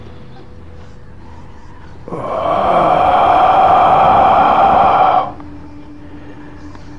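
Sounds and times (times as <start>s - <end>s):
person imitating a heavy growling exhale: 2.1s - 5.4s.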